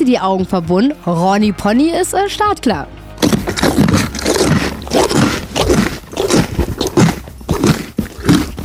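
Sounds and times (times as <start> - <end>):
speech: 0.0 - 3.0
pony chewing a snack loudly on a horse farm: 3.2 - 8.6.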